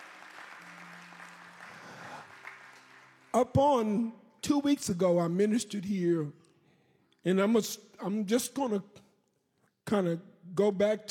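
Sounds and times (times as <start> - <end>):
crowd applauding with overlapping hand claps: 0.0 - 4.0
speech: 3.3 - 6.4, 7.2 - 9.0, 9.9 - 11.0.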